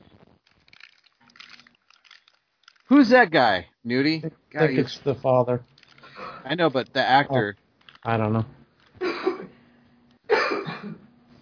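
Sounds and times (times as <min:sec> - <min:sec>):
speech: 0:02.9 - 0:05.7, 0:06.4 - 0:08.6
raspy coughs: 0:09.0 - 0:09.6, 0:10.3 - 0:11.1.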